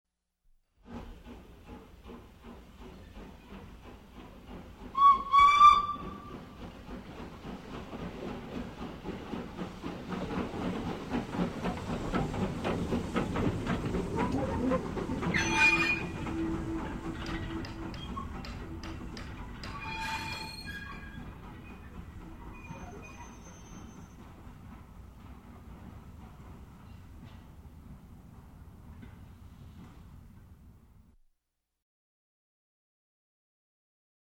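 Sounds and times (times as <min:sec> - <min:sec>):
steam locomotive brakes: 0:00.8 - 0:25.1, 0:28.9 - 0:30.6
steam locomotive approaching: 0:00.8 - 0:31.1
steam locomotive whistle: 0:04.9 - 0:06.4, 0:14.7 - 0:19.1.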